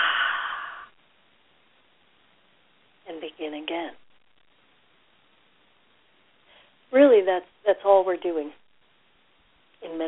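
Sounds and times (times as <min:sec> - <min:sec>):
slow breathy exhale during meditation: 0:00.0 - 0:01.0
speech: 0:07.2 - 0:08.6, 0:09.8 - 0:10.0.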